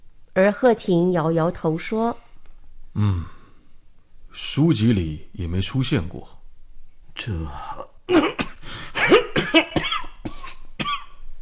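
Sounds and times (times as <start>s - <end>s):
speech: 0.4s - 2.2s, 2.9s - 3.4s, 4.3s - 6.4s, 7.2s - 8.3s
person coughing violently: 8.1s - 11.2s.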